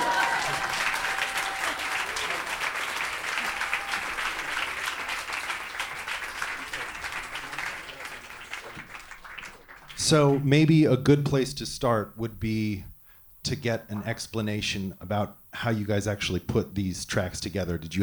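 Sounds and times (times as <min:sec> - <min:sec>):
audience applauding: 0:00.0 - 0:10.3
speech: 0:10.1 - 0:12.9, 0:13.5 - 0:18.0.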